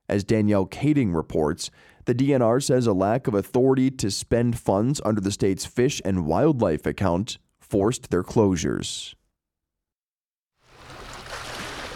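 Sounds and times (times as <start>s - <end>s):
speech: 0.1s - 9.2s
water lapping along the shoreline of a Lake Superior bay: 10.6s - 11.9s.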